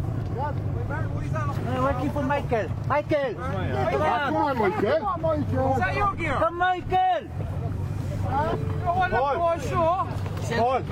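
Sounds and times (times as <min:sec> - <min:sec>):
boat engine droning, leaving harbour: 0:00.0 - 0:10.9
speech: 0:00.4 - 0:07.4, 0:08.3 - 0:10.9.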